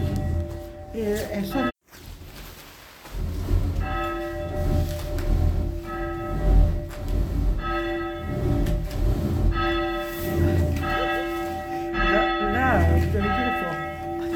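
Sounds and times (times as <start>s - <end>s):
church bell rung by pulling its rope: 0.0s - 1.8s, 3.7s - 14.3s
speech: 1.0s - 1.7s.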